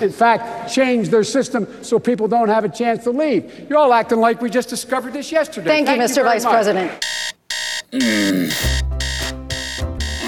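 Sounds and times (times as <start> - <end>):
speech: 0.0 - 7.1, 7.9 - 8.9
electronic alarm clock ringing with a bright tonal beeping melody: 7.0 - 10.2.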